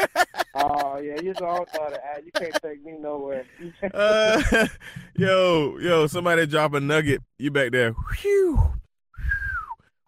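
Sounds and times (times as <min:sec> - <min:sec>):
laughter: 0:00.0 - 0:02.6, 0:03.4 - 0:05.0
speech: 0:01.2 - 0:08.8
person whistling: 0:08.0 - 0:09.8.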